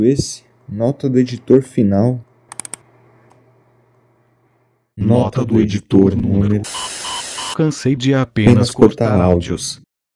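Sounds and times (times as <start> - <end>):
speech: 0.0 - 2.3, 5.0 - 6.9, 7.6 - 9.9
computer keyboard typing: 2.5 - 2.8.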